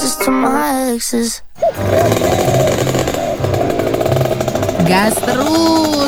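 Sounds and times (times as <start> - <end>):
speech: 0.2 - 3.0, 4.9 - 6.0
rare old vehicle engine revving: 1.6 - 6.0.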